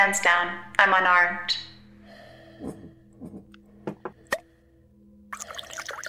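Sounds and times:
speech: 0.1 - 1.7, 2.6 - 2.8
liquor being poured into shot glasses: 5.3 - 6.0.

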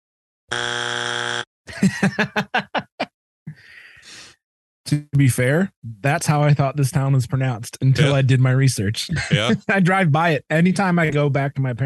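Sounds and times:
game show wrong-answer buzzer: 0.5 - 1.5
burst of rhythmic laughter: 1.7 - 3.1, 9.1 - 9.8
speech: 1.8 - 2.6, 4.9 - 11.8.

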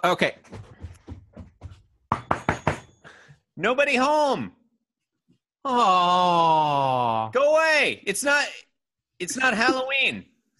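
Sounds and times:
speech: 0.0 - 0.6, 3.6 - 4.6, 5.6 - 10.3
knocking on a door: 0.4 - 2.9.

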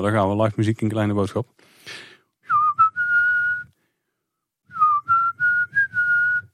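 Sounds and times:
speech: 0.0 - 2.1
person whistling a melody imitating a song's intro: 2.4 - 3.8, 4.7 - 6.5.

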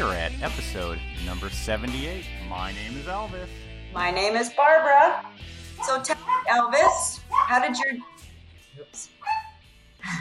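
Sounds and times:
speech: 0.0 - 8.2, 8.8 - 9.2
dogs yipping and whimpering: 5.8 - 8.2, 9.2 - 9.6.

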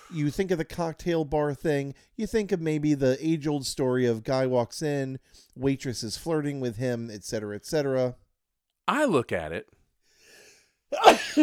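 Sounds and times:
speech: 0.1 - 8.2, 8.9 - 9.8, 10.9 - 11.4
sneeze: 11.0 - 11.4.

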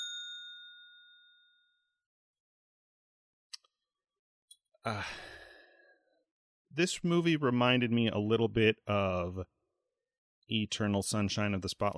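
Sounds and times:
bell ding struck as a spoiler warning: 0.0 - 2.0
speech: 4.8 - 5.2, 6.8 - 9.6, 10.5 - 11.9
long breathy sigh: 4.9 - 6.1.

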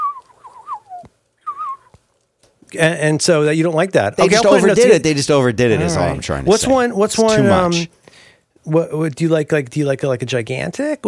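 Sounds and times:
person whistling a mournful tune imitating an Irish penny whistle: 0.0 - 1.9
speech: 2.7 - 8.0, 8.6 - 11.0.

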